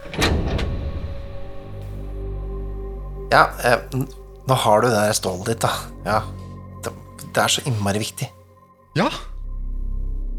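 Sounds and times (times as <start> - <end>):
sharp metallic clanks: 0.0 - 2.2
heavy gate door grinding open: 0.0 - 3.0
speech: 3.3 - 8.4, 9.0 - 9.3.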